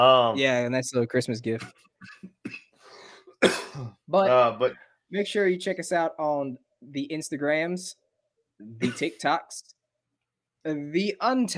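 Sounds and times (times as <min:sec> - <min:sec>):
speech: 0:00.0 - 0:02.2, 0:03.4 - 0:08.0, 0:08.6 - 0:09.8, 0:10.6 - 0:11.5
person coughing: 0:02.0 - 0:04.0, 0:08.8 - 0:09.2.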